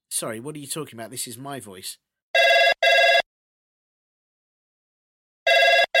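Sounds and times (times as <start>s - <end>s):
speech: 0.2s - 2.1s
telephone ringing in a double-burst pattern: 2.4s - 3.3s, 5.5s - 5.9s.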